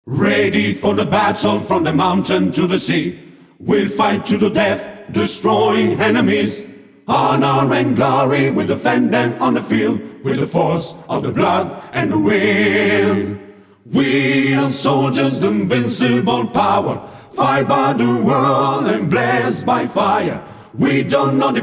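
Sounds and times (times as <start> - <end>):
a cappella singing: 0.0 - 21.6.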